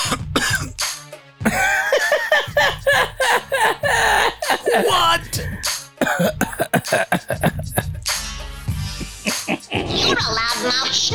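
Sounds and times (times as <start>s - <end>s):
person coughing harshly: 0.0s - 0.8s, 1.5s - 8.0s
laughter: 1.5s - 8.0s, 9.0s - 10.9s.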